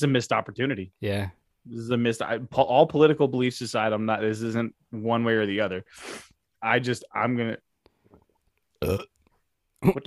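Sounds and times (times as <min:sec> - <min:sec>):
speech: 0:00.0 - 0:07.7, 0:08.8 - 0:09.1, 0:09.8 - 0:10.0
deep croaky belches: 0:08.8 - 0:09.2.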